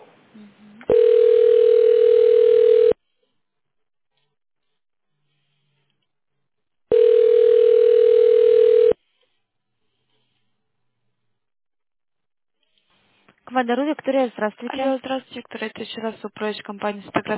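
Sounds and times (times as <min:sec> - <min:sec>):
telephone line tone while a call is being transferred: 0:00.9 - 0:03.0, 0:06.9 - 0:09.0
speech: 0:13.6 - 0:17.3.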